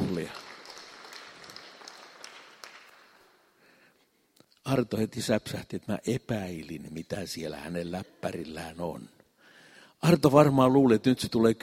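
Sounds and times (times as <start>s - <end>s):
small group applauding: 0.0s - 3.6s
speech: 4.7s - 9.2s, 10.0s - 11.6s.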